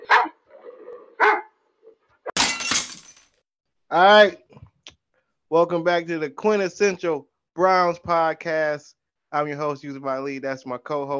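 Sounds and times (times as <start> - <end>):
big pit bull dog barking: 0.0 - 0.5, 1.1 - 2.0
speech: 3.9 - 4.4, 5.5 - 11.1.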